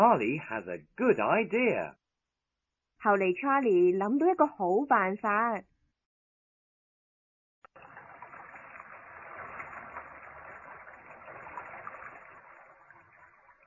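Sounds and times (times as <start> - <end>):
speech: 0.0 - 2.0, 3.0 - 5.7
running shower water: 7.8 - 13.6.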